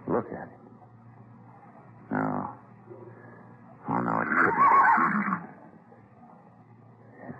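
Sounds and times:
speech: 0.2 - 0.6
horse with a star on its forehead neighing and snorting: 4.2 - 5.5.

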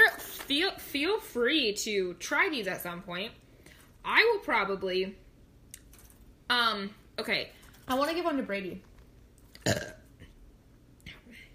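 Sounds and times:
speech: 0.5 - 3.4, 4.0 - 5.2, 6.5 - 8.9, 9.6 - 9.8
loud burp: 9.6 - 10.1.

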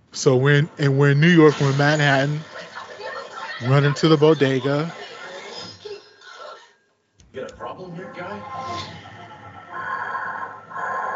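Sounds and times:
speech: 0.2 - 2.5, 3.6 - 5.0
laughter: 2.4 - 5.5
man's heavy rasping respirator-style breathing: 8.5 - 11.1.

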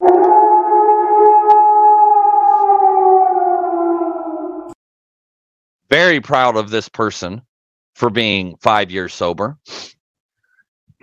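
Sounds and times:
wolf pack howling: 0.0 - 4.8
speech: 6.0 - 10.0.

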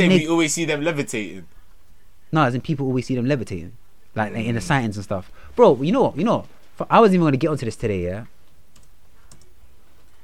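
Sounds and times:
speech: 0.0 - 1.5, 2.3 - 8.3
faint steady hum: 0.0 - 10.2
typing on a computer keyboard: 8.7 - 9.5.

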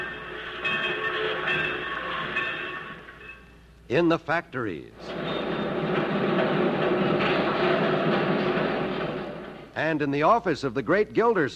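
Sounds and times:
train rumbling in a small town's busy railroad yard: 0.0 - 3.4, 5.0 - 10.0
speech: 3.9 - 5.3, 9.8 - 11.5.

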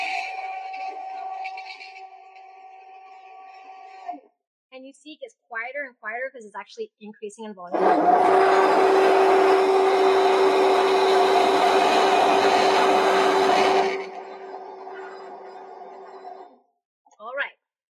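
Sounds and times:
speech: 4.8 - 9.8
immersion blender whirring while frothing matcha with milk: 7.7 - 16.5.

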